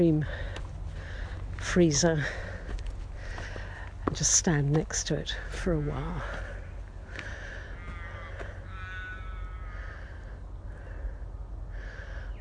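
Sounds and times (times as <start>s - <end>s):
speech: 0.0s - 0.5s, 1.6s - 2.5s, 4.1s - 6.4s
steady low rumble of wind or traffic: 0.0s - 12.3s
crows cawing: 5.4s - 12.3s.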